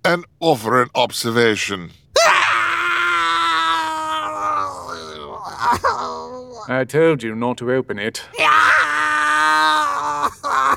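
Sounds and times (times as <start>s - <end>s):
speech: 0.1s - 2.0s, 6.6s - 8.8s
man crying out in strain: 2.2s - 6.7s, 8.3s - 10.7s
man with poison needles in his face screaming in pain: 2.2s - 6.7s, 8.3s - 10.7s.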